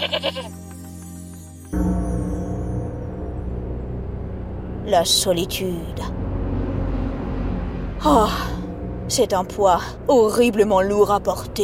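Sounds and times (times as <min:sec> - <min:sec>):
goat bleating: 0:00.0 - 0:00.5
speech: 0:00.0 - 0:00.8, 0:01.7 - 0:02.1, 0:04.9 - 0:06.2, 0:08.0 - 0:08.5, 0:09.1 - 0:11.6
steady low drone: 0:01.7 - 0:11.6.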